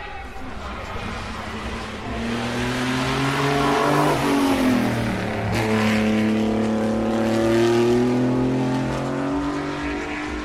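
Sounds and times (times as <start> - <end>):
vintage Maserati 250F racing car engine passing and changing gear: 0.3 - 10.4.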